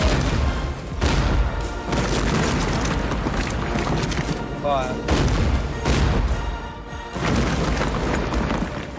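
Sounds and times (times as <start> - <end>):
debris noise: 0.0 - 6.3, 7.1 - 8.9
warship cannons firing on a fort: 0.0 - 8.9.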